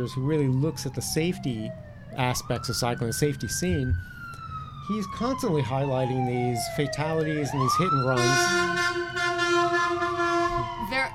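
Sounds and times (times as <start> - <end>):
speech: 0.0 - 4.1, 4.9 - 11.1
street noise: 0.0 - 11.1
loud sustained horn blaring outside a window: 8.1 - 10.8.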